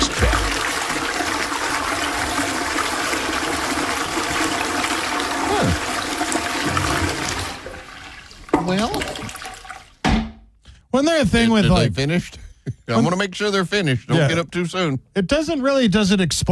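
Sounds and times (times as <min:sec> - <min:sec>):
self-cleaning toilet flushing waste and sanitizing its bowl: 0:00.0 - 0:10.0
speech: 0:08.7 - 0:09.1, 0:11.0 - 0:16.5.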